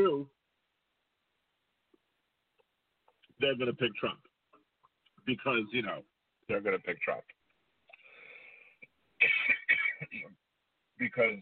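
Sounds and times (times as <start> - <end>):
speech: 3.4 - 4.3, 5.3 - 7.4, 11.0 - 11.3
loud harsh coughs: 9.2 - 10.4
soft raspy throat clearing: 9.2 - 10.4.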